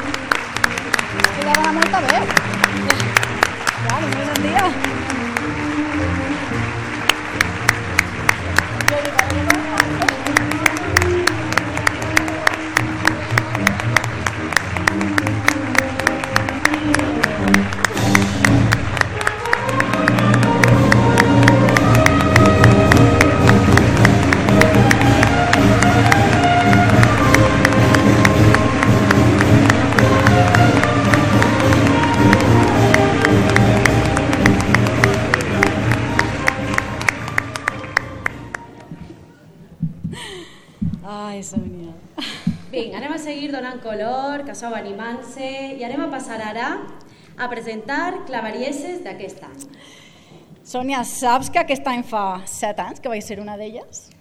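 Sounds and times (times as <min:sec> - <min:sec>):
large crowd applauding: 0:00.0 - 0:39.1
rhythmic beating: 0:00.0 - 0:41.8
speech: 0:01.5 - 0:03.0, 0:03.8 - 0:06.7, 0:44.6 - 0:50.0, 0:50.7 - 0:54.2
festive din: 0:02.4 - 0:40.4.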